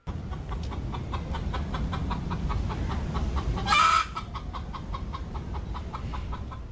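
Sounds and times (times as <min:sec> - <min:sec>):
laying hens clucking: 0:00.0 - 0:06.6
low constant rumble: 0:00.0 - 0:06.6
laying hen squawk: 0:03.6 - 0:04.7.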